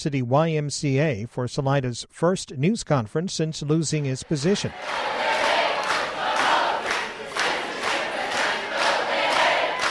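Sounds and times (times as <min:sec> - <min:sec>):
speech: 0:00.0 - 0:05.5
large crowd of students chanting in unison outdoors at a rain-soaked rally: 0:04.0 - 0:09.8.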